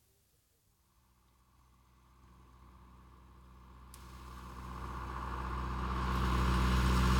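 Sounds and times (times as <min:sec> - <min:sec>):
tractor engine rumbling while driving along a road: 0:04.1 - 0:07.1.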